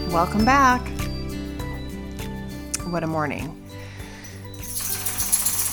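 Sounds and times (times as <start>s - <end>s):
speech: 0.2s - 0.9s, 2.9s - 3.6s
dog shaking itself off with collar tags jingling: 4.5s - 5.7s.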